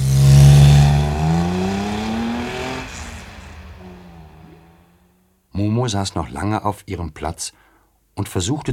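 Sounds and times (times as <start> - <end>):
car engine revving as the car accelerates away: 0.0 - 5.2
speech: 5.8 - 8.7.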